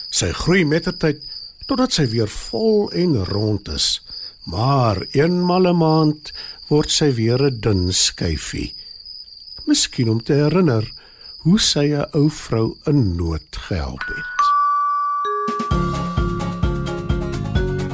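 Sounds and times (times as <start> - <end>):
speech: 0.2 - 8.8, 9.6 - 14.6
bright bells chiming a ringing melody: 14.0 - 17.8.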